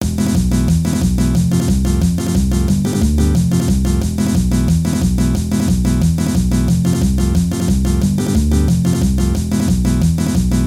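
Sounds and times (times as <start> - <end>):
paso doble music: 0.0 - 10.6.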